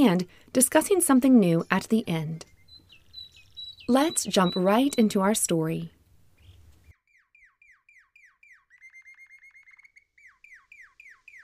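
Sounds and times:
speech: 0.0s - 2.5s, 3.9s - 6.0s
bird singing in repeated phrases: 1.5s - 5.6s, 6.4s - 11.4s.

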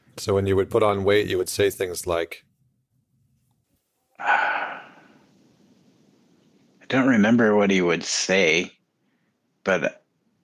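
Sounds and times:
speech: 0.2s - 2.5s, 4.2s - 4.6s, 6.9s - 8.8s, 9.6s - 10.0s
deep breath: 4.2s - 5.4s, 9.0s - 9.5s.

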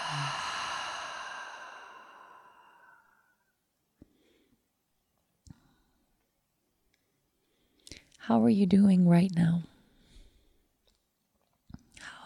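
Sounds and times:
long breathy exhale through an open mouth: 0.0s - 3.4s
speech: 8.3s - 9.7s.

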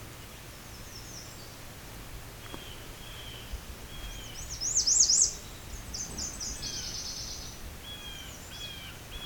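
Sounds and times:
Nashville Warbler singing in Bruce Peninsula National Park: 0.2s - 1.7s, 2.4s - 9.2s.

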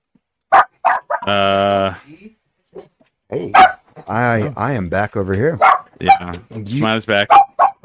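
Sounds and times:
dog barking excitedly: 0.5s - 1.3s, 3.5s - 3.9s, 5.6s - 6.3s, 7.3s - 7.8s
dog long drawn-out howling bark: 0.5s - 1.3s, 3.6s - 3.8s, 5.6s - 6.2s, 7.3s - 7.8s
speech: 1.3s - 2.2s, 3.3s - 7.4s.

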